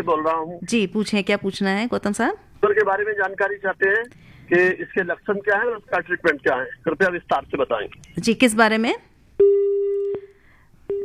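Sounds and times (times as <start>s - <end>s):
speech: 0.0s - 9.7s
telephone busy tone after a dropped phone-in call: 9.4s - 10.3s.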